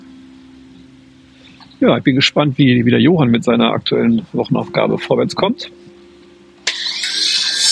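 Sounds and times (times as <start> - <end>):
low mechanical hum: 0.0 - 7.7
speech: 1.8 - 5.8
Flex angle grinder sawing into material: 6.6 - 7.7.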